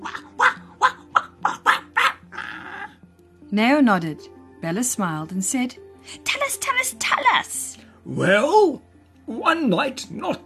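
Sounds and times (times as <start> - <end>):
puppy barking: 0.0 - 2.9
speech: 3.5 - 10.4.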